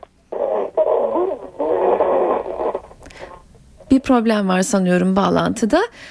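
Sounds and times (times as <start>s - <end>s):
caller's radio playing through a phone line: 0.3s - 3.4s
speech: 3.9s - 6.0s.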